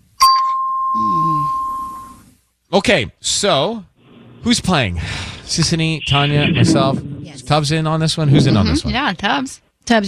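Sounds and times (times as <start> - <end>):
doorbell ding-dong chime: 0.2 - 2.2
speech: 2.7 - 10.0
voice murmuring: 4.0 - 9.0.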